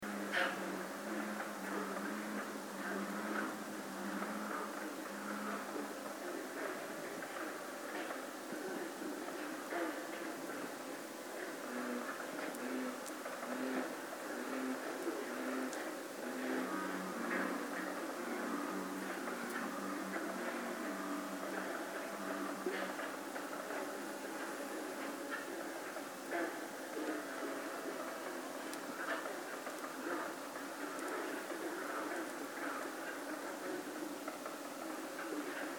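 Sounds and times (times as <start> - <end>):
frog chorus at West Pond: 0.0 - 35.7.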